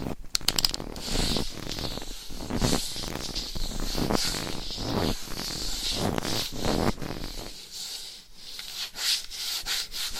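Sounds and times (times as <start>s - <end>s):
scratchy rubbing across a microphone: 0.0s - 10.1s.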